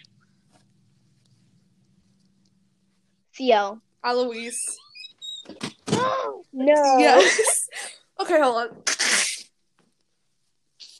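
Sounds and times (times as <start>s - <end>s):
speech: 3.4s - 4.8s, 6.6s - 7.5s, 8.3s - 8.9s
person giving sharp hissy sneezes: 8.9s - 9.5s.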